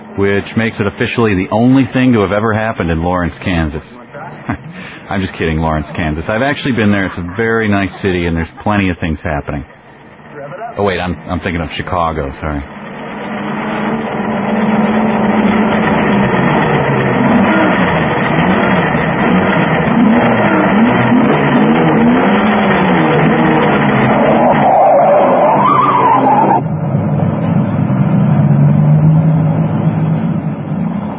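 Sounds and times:
drag race car tyres skidding: 0.0 - 31.1
drag race cars accelerating on a street in Lawrence Kansas: 0.0 - 31.1
speech: 0.2 - 4.0, 5.1 - 9.8, 10.8 - 12.8
laughter: 4.0 - 9.6.

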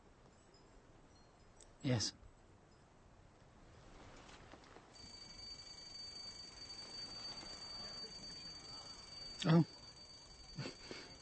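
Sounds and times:
speech: 1.8 - 2.2, 9.4 - 9.8
noisy hiss: 1.8 - 11.1
steady high-pitched electronic alarm tone: 5.0 - 11.1.

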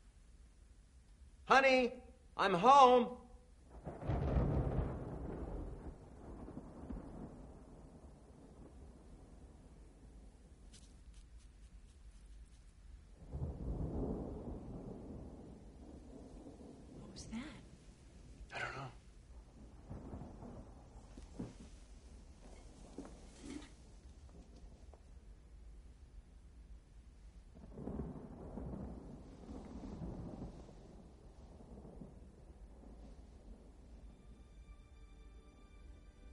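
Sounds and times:
steady rain: 0.0 - 36.3
speech: 1.5 - 3.2
distant thunder rolling: 3.6 - 11.1, 13.0 - 26.4, 27.0 - 34.5.

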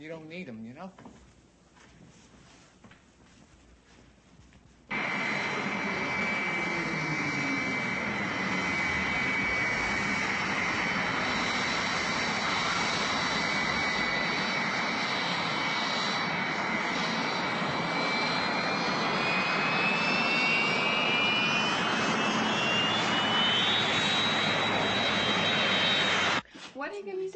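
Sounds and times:
speech: 0.0 - 1.3
jet aircraft screaming overhead with high whine over rumble: 4.9 - 26.4.

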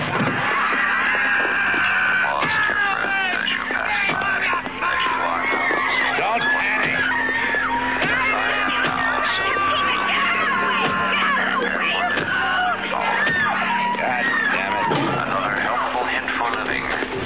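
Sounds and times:
dense crowd shouting and screaming: 0.1 - 17.1.

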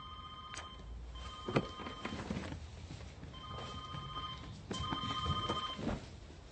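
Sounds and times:
telephone ringing with bright warbling electronic tones: 0.0 - 2.2, 3.4 - 5.8.

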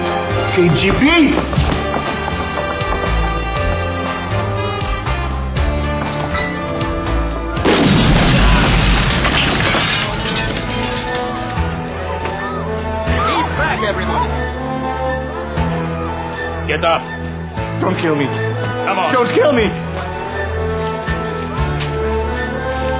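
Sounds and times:
tense orchestral music: 0.0 - 22.9
speech: 0.6 - 1.7, 16.8 - 17.2, 17.8 - 19.8
gas explosion boom with rumbling roar: 7.6 - 9.6.

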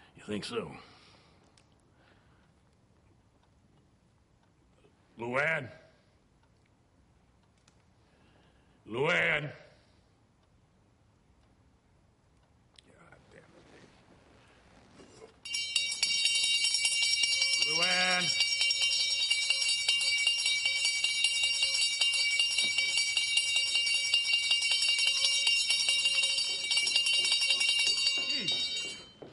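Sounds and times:
speech: 0.2 - 1.0, 5.2 - 5.8, 8.9 - 9.7
bell ringing with rapid repeated metallic strikes: 15.4 - 29.3.

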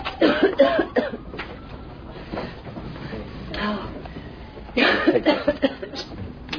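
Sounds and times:
woman coughing heavily: 0.2 - 1.2, 4.8 - 6.1.

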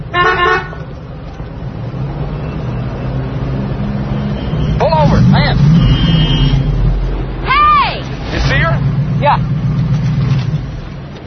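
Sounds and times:
car engine rumbling: 0.0 - 11.2
car horn honking: 0.1 - 0.9, 4.1 - 7.0.

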